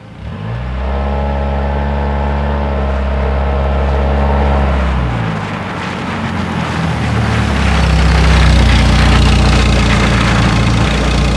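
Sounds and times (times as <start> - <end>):
car: 0.0 - 11.3.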